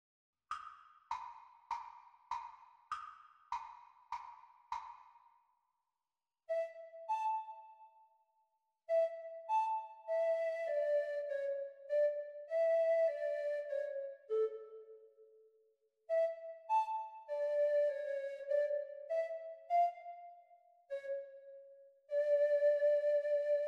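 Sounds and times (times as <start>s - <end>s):
treble recorder performance at Grade 1 exam speed: 6.5s - 8.1s, 8.9s - 15.0s, 16.1s - 23.6s.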